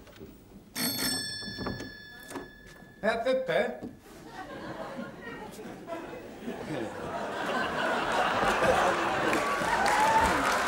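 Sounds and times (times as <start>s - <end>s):
doorbell ringing: 0.8s - 3.8s
speech: 3.0s - 4.0s
laughter: 4.2s - 10.6s.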